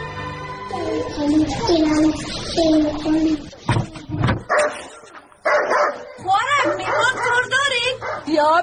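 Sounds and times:
people talking: 0.7 - 5.3, 6.0 - 8.6
dog barking and yipping excitedly: 4.4 - 8.4.

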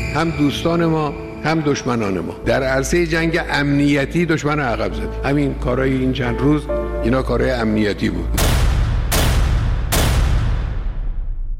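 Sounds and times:
speech: 0.1 - 8.4
gunshots between buildings in a street in Iran: 8.4 - 11.4.

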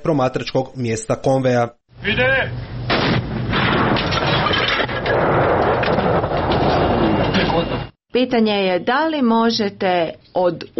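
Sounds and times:
speech: 0.0 - 2.8, 7.5 - 10.7
120 mm mortar firing blasts: 2.9 - 7.3.

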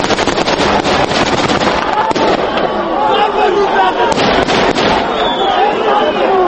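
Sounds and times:
gunshots fired into the air: 0.0 - 2.8, 4.1 - 5.3
crowd noise and voices: 0.0 - 6.4.

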